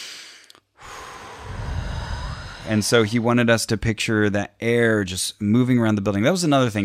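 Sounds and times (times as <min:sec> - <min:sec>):
hissing inhale through the nose: 0:00.0 - 0:03.2
longer breathy exhale pushed out through the mouth: 0:00.0 - 0:03.3
speech: 0:02.6 - 0:06.8.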